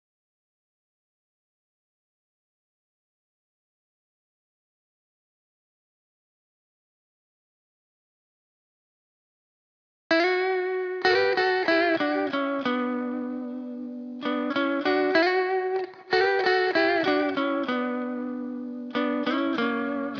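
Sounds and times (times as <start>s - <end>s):
lead guitar loop in B minor at 95 BPM: 10.1s - 20.1s.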